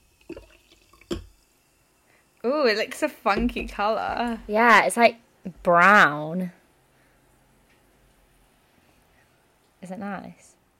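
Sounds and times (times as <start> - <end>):
tonic poured from a bottle into a drink in a glass: 0.0 - 1.8
speech: 2.4 - 6.6, 9.9 - 10.6.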